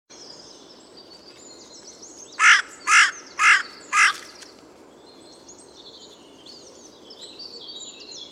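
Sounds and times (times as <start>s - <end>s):
Carrion crow Corvus corone cawing: 2.4s - 4.3s.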